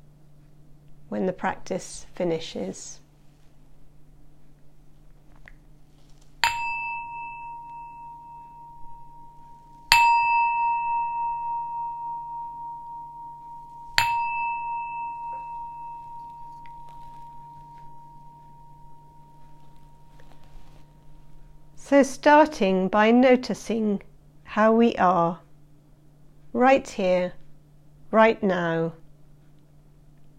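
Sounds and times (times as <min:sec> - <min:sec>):
low steady hum: 0:00.0 - 0:30.3
speech: 0:01.1 - 0:03.0, 0:21.9 - 0:25.4, 0:26.6 - 0:27.4, 0:28.1 - 0:29.0
meditation bell struck to start a mindfulness practice: 0:06.4 - 0:21.8.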